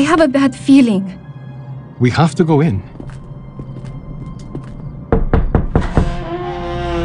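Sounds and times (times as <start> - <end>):
speech: 0.1 - 1.3, 2.0 - 3.2
firm knocks on a wooden door: 5.1 - 6.2.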